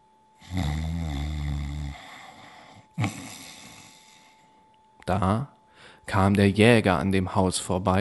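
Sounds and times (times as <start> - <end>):
loud snoring: 0.4 - 4.2
speech: 5.1 - 7.9.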